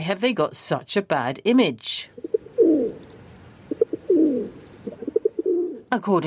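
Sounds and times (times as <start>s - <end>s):
speech: 0.0s - 2.2s, 5.9s - 6.2s
pigeon cooing: 2.2s - 5.9s.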